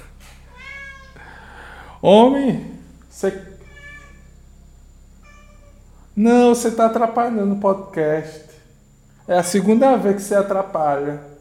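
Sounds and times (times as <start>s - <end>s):
cat meowing: 0.5s - 1.2s, 3.6s - 4.3s, 5.2s - 5.8s
speech: 2.0s - 3.6s, 6.2s - 8.5s, 9.3s - 11.3s.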